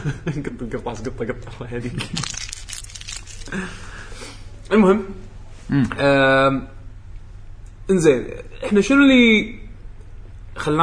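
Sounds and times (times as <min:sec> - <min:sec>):
speech: 0:00.0 - 0:02.5, 0:03.5 - 0:04.0, 0:04.7 - 0:06.8, 0:07.9 - 0:09.6, 0:10.6 - 0:10.8
snack bag crinkling while being handled: 0:02.0 - 0:03.6.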